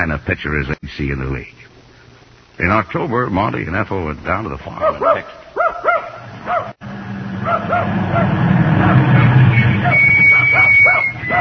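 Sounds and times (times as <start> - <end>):
speech: 0.0 - 1.7, 2.6 - 5.9, 7.5 - 8.4
dog barking and yipping excitedly: 4.8 - 6.8, 7.4 - 9.2, 9.8 - 11.3.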